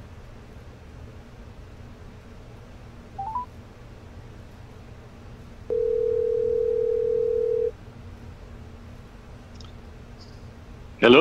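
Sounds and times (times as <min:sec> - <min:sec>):
phone dialing beeps: 0:03.2 - 0:03.5, 0:05.7 - 0:07.7.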